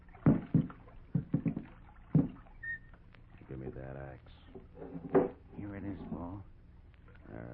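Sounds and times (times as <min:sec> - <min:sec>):
oars dipping and pulling through river water with a low knock: 0:00.0 - 0:03.6.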